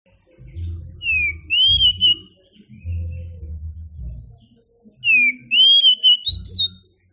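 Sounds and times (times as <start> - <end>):
oriental magpie-robin singing loud whistled phrases: 0.5 - 3.4, 5.0 - 6.9.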